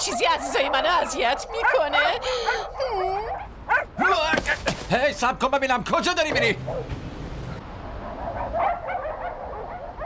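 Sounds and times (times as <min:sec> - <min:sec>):
speech: 0:00.0 - 0:07.0
dog letting out short sharp yips: 0:00.4 - 0:03.9, 0:06.6 - 0:06.9, 0:08.1 - 0:10.0
dog whimpering in a long wavering whine: 0:00.6 - 0:03.4.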